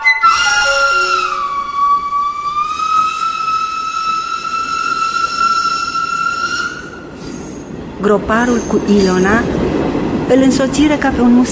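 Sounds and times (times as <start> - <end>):
train whistle: 0.2 - 7.7
speech: 8.1 - 9.7, 10.3 - 11.4.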